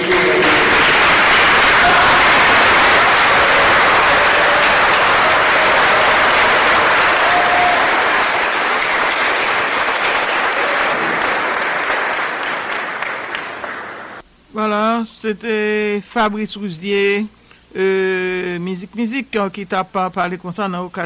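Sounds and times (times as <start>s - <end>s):
audience applause during a standing ovation at a funeral tribute in Haiti: 0.0s - 14.2s
speech: 15.2s - 21.0s.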